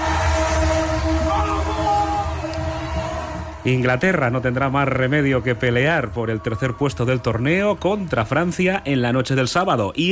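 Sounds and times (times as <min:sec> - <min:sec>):
train horns honking in celebration: 0:00.0 - 0:02.7
crowd and street noise: 0:00.0 - 0:10.1
speech: 0:03.6 - 0:10.1.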